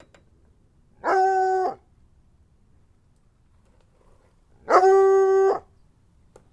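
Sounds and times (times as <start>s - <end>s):
dog howling: 1.0s - 1.8s, 4.6s - 5.7s.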